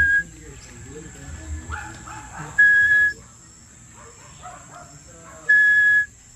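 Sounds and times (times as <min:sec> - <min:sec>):
person imitating little tinamou whistle: 0:00.0 - 0:00.3, 0:02.6 - 0:03.2, 0:05.5 - 0:06.1
animal sounds: 0:00.0 - 0:06.2
faint murmuring: 0:00.0 - 0:06.2.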